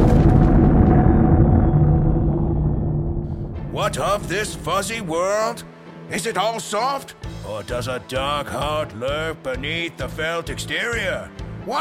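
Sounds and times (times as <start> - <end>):
bomb detonation sound effect: 0.0 - 5.4
speech: 3.9 - 11.7.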